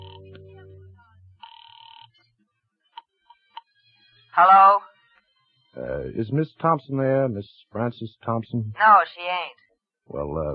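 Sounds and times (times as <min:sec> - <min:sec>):
low humming tone on a telephone line: 0:00.0 - 0:01.4
telephone ringing down the line on an outgoing call: 0:00.0 - 0:02.1
speech: 0:04.4 - 0:04.9, 0:06.0 - 0:10.5.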